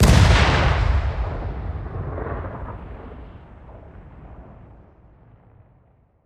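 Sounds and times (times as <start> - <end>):
nuke destruct explosion: 0.0 - 4.7.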